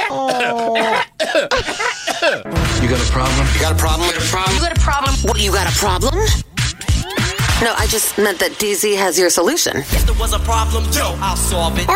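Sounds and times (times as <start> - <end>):
speech: 0.1 - 2.3, 2.9 - 6.5, 7.6 - 11.9
baby coughing: 0.3 - 2.5.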